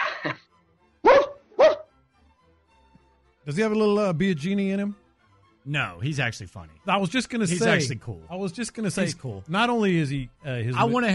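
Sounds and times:
speech: 0.2 - 0.4, 3.4 - 5.0, 5.6 - 11.1
dog barking: 1.0 - 1.9.

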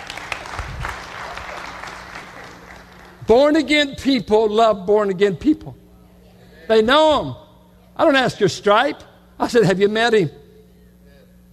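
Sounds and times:
crowd applauding a speaker: 0.0 - 3.3
speech: 3.3 - 5.8, 6.7 - 7.4, 8.0 - 10.4.

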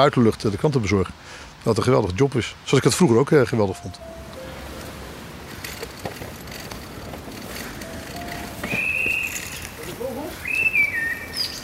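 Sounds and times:
speech: 0.0 - 4.3
steady hiss of open air: 0.0 - 11.6
birds singing outdoors in early morning: 7.5 - 11.6.

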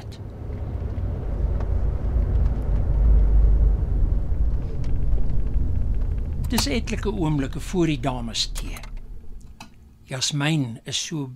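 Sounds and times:
low droning hum inside a parked car: 0.0 - 11.1
speech: 6.5 - 8.9, 10.1 - 11.3.

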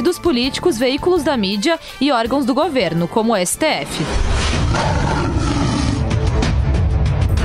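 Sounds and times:
speech: 0.1 - 5.3
lion roaring in a social media video: 4.0 - 6.5.

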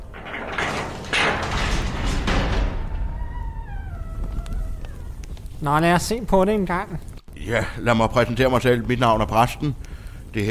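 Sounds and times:
gate creaking open at a dwarves' dwelling: 0.0 - 5.6
speech: 5.6 - 10.4.

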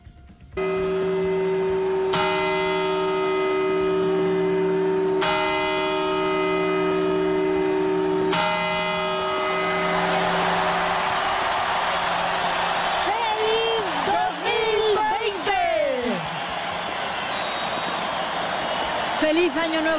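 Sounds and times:
large clock bell at the Puerta del Sol in Madrid tolling New Year's Eve chimes: 0.6 - 15.2
large crowd cheering at New Year celebration: 0.6 - 19.9.

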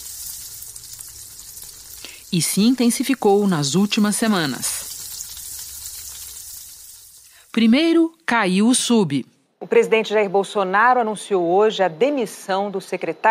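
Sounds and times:
food frying and sizzling in a hot pan: 0.0 - 8.2
speech: 2.3 - 4.8, 7.6 - 13.2.

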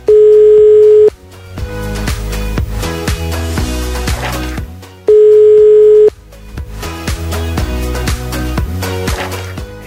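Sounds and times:
telephone ringing tones: 0.0 - 1.1, 5.1 - 6.1
busy music: 0.1 - 9.8.

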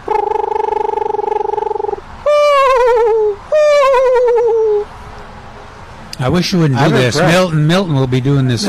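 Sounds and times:
person imitating a screech owl call: 0.0 - 4.9
speech: 6.2 - 8.6.

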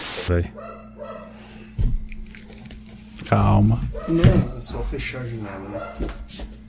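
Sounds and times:
speech: 0.2 - 0.8, 3.3 - 6.5
steady hum: 0.3 - 6.6
low dog bark from the first floor of the building: 0.5 - 1.4, 3.9 - 4.6, 5.4 - 6.3.

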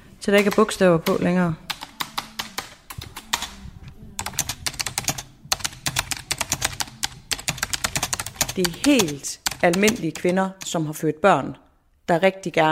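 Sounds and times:
speech: 0.2 - 1.6, 8.6 - 12.6
rapid typing with artificial nails on a computer keyboard: 0.4 - 3.6, 4.2 - 10.8.

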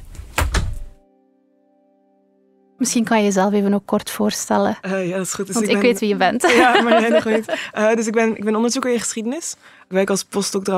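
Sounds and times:
studio door pushed shut: 0.3 - 1.0
speech: 2.8 - 10.7
laughter: 5.6 - 5.8, 6.4 - 7.9.

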